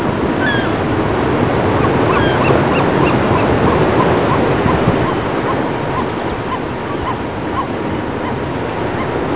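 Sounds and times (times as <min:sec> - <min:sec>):
gulls calling: 0:00.2 - 0:09.2.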